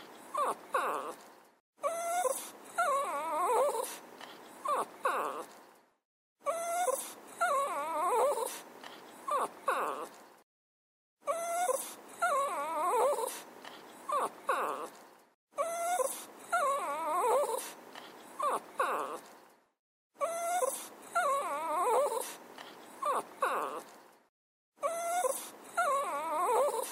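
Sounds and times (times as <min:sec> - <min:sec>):
small dog crying: 0:00.3 - 0:01.2, 0:01.8 - 0:04.0, 0:04.6 - 0:05.5, 0:06.4 - 0:08.6, 0:09.3 - 0:10.1, 0:11.2 - 0:13.4, 0:14.1 - 0:14.9, 0:15.6 - 0:17.7, 0:18.4 - 0:19.2, 0:20.2 - 0:23.9, 0:24.8 - 0:26.9.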